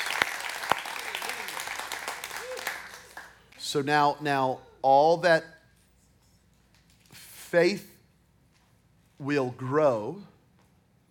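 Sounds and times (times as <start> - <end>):
crowd clapping together in applause: 0.0 - 3.6
speech: 3.7 - 5.6, 7.5 - 7.9, 9.2 - 10.3.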